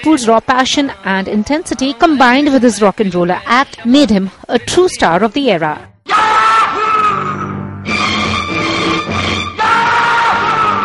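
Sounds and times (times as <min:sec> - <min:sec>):
speech: 0:00.0 - 0:05.9
man yelling in a film song: 0:06.1 - 0:07.5, 0:09.6 - 0:10.8
dense energetic film song musical backing: 0:07.0 - 0:10.8.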